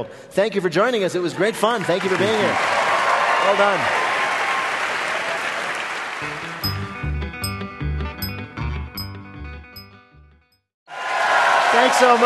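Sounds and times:
speech: 0.0 - 4.0, 11.9 - 12.2
studio audience applause: 1.7 - 6.6, 10.9 - 12.2
bouncy musical sting with rhythmic chords: 6.5 - 8.4.

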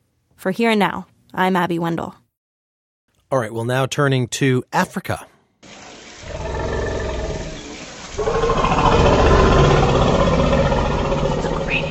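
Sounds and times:
speech: 0.4 - 2.2, 3.3 - 5.8
elephant rumbling and roaring: 6.2 - 11.8.

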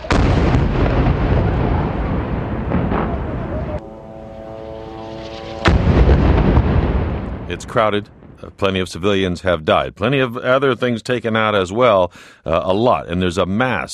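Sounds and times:
heavy explosions from airstrikes over Gaza City: 0.0 - 3.8, 4.5 - 9.3
droning tone: 3.6 - 7.3
speech: 7.5 - 13.9.

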